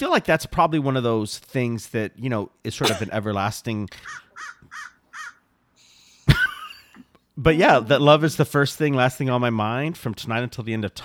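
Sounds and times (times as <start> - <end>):
speech: 0.0 - 4.9, 7.4 - 11.0
rough crow squawk: 2.8 - 3.2, 4.0 - 6.1
crow cawing: 4.0 - 5.4.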